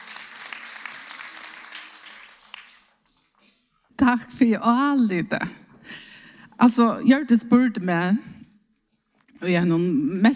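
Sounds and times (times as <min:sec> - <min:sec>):
crowd applauding: 0:00.0 - 0:03.2
speech: 0:04.0 - 0:06.0, 0:06.6 - 0:08.4, 0:09.4 - 0:10.3.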